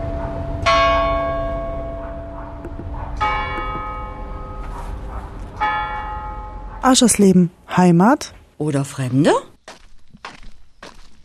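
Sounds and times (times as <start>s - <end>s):
church bells ringing at the market in Aschersleben: 0.0s - 7.4s
speech: 6.8s - 9.5s.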